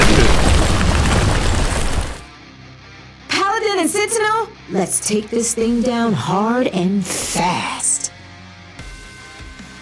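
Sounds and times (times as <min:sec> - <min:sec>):
ground erupting from a magical seismic attack: 0:00.0 - 0:02.3
speech: 0:04.0 - 0:07.9.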